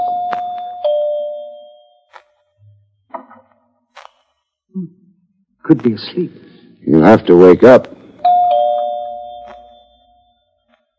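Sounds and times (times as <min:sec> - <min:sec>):
doorbell two-note ding-dong chime: 0:00.0 - 0:02.1, 0:08.2 - 0:10.3
speech: 0:04.8 - 0:08.0.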